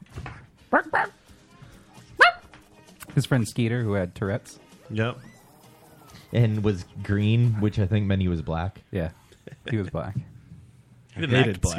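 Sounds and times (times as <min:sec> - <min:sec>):
human voice mimicking a dog barking: 0:00.7 - 0:01.2
speech: 0:00.7 - 0:01.2, 0:03.2 - 0:05.3, 0:06.3 - 0:10.3, 0:11.2 - 0:11.7.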